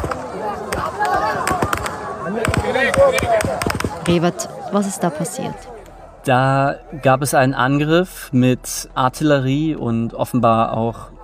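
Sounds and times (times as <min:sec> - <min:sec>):
gunshots at a food aid distribution center: 0:00.0 - 0:04.4
crowd of thousands shouting and murmuring waiting for food parcels: 0:00.0 - 0:11.2
speech: 0:03.0 - 0:11.2.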